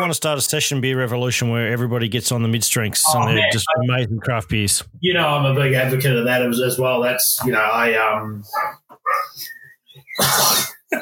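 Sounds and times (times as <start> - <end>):
speech: 0.0 - 8.8, 10.2 - 11.0
dog barking: 8.5 - 9.4.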